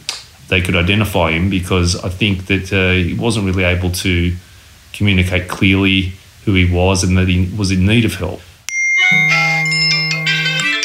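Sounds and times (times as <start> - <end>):
speech: 0.5 - 8.5
mobile phone SMS alert tone with buzzing drone and pulsing beeps: 8.7 - 10.8.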